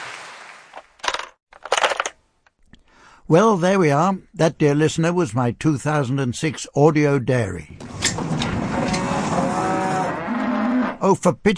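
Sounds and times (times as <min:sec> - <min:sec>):
speech: 0:03.3 - 0:07.9, 0:11.0 - 0:11.5
dense continuous farmyard background: 0:03.8 - 0:11.2
cows mooing at milking time: 0:08.0 - 0:11.0.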